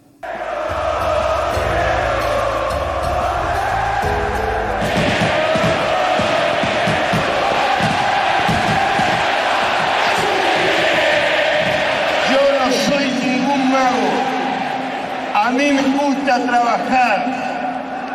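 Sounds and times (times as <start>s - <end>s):
large stadium crowd roaring and cheering: 0.2s - 18.1s
rhythmic low thumping of drums or stamping: 0.3s - 12.1s.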